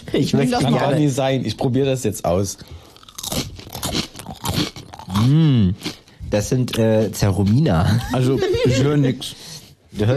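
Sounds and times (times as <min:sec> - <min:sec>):
speech: 0:00.1 - 0:02.9, 0:05.2 - 0:10.1
potato chips being eaten crunching: 0:02.9 - 0:06.0
laughter: 0:07.9 - 0:09.2.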